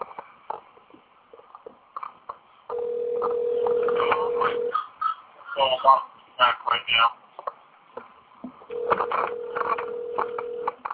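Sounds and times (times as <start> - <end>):
telephone dial tone: 2.7 - 4.7, 8.7 - 10.8
thin phone-line hiss: 2.7 - 4.7, 8.7 - 10.8
speech: 5.8 - 7.2.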